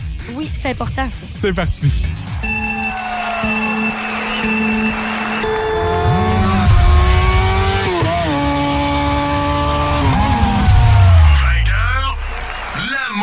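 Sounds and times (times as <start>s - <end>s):
speech: 0.3s - 4.7s
racing motorcycle engines revving: 2.4s - 12.7s.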